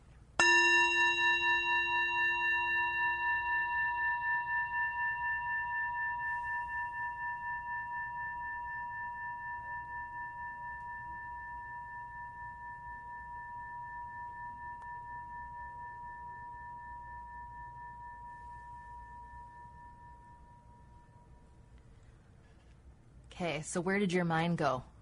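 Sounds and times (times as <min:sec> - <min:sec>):
struck gong ringing: 0:00.4 - 0:11.2
speech: 0:23.4 - 0:24.9.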